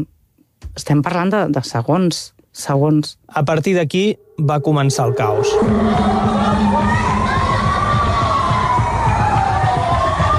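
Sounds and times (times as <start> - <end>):
speech: 0.8 - 6.9
siren-like wail: 4.0 - 10.3
panicked crowd screaming and shouting: 4.7 - 10.3.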